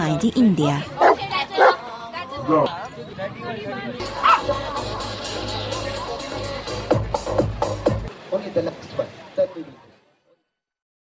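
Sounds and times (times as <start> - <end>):
noisy crowd babble at a dog show in India: 0.0 - 10.2
speech: 0.1 - 1.0, 2.4 - 5.0
dogs barking and yipping at a dog show in India: 0.9 - 1.8, 4.1 - 4.6.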